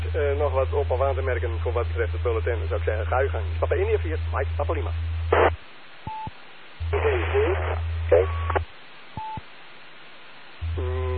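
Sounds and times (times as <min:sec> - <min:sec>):
radio static: 0:00.1 - 0:05.6, 0:06.8 - 0:08.8
speech: 0:00.2 - 0:05.2
faint garbled voices in radio transmissions: 0:02.8 - 0:05.6, 0:06.8 - 0:08.7
brief electronic beeps: 0:06.1 - 0:08.6.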